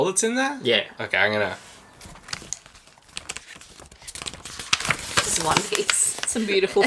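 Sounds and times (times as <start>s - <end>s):
speech: 0.0s - 1.7s, 5.4s - 6.8s
folded paper taken from a box being unfolded: 1.8s - 6.8s.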